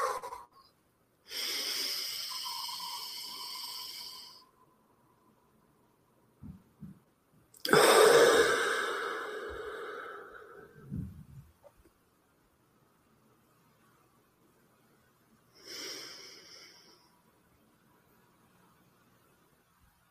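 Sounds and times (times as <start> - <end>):
deep breathing in and exhaling through the nose in a guided breathing exercise: 1.3 - 4.6, 7.7 - 11.2.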